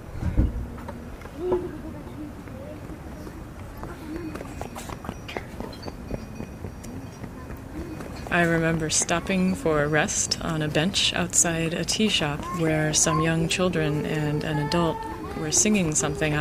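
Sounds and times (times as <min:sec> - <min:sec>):
busy outdoor background: 0:00.0 - 0:16.3
young mountain goat hooves clattering: 0:00.8 - 0:12.6
speech: 0:08.3 - 0:16.3.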